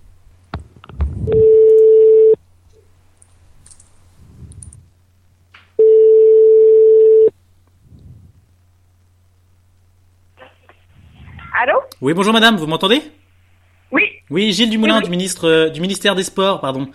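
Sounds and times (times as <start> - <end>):
telephone ringback tone of an outgoing call: 1.3 - 2.4, 5.8 - 7.3
speech: 12.0 - 13.2, 14.4 - 16.9.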